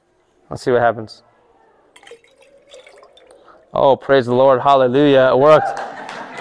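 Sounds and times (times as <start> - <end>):
speech: 0.5 - 1.3, 3.8 - 5.8
liquid being poured into a container: 2.0 - 4.4
laughter: 5.2 - 6.3.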